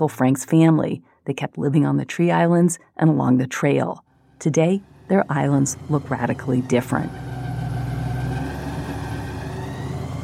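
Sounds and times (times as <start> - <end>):
speech: 0.0 - 7.3
small airboat engine and propeller roaring across marshes: 4.3 - 10.2.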